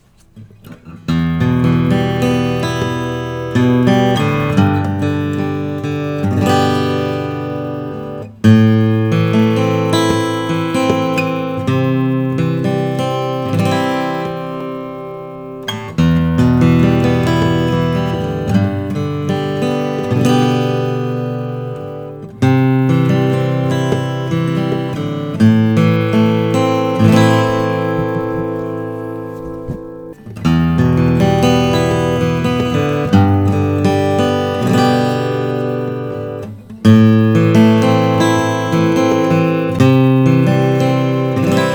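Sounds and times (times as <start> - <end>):
Bourgeois 00 vintage short scale guitar: 0.0 - 41.7.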